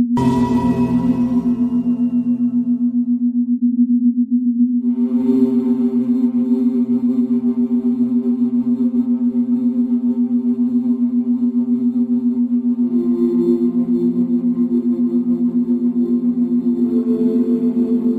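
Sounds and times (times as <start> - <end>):
struck bowl ringing: 0.2 - 3.0
sustained ringing drone with bright overtones: 0.2 - 3.4, 4.9 - 18.1
steady low hum of binaural beats: 0.2 - 18.1.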